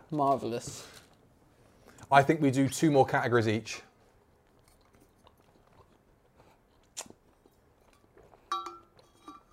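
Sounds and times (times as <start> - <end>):
speech: 0.1 - 1.0, 2.1 - 3.9
food crunching: 4.4 - 9.5
clinking ring: 8.5 - 9.5.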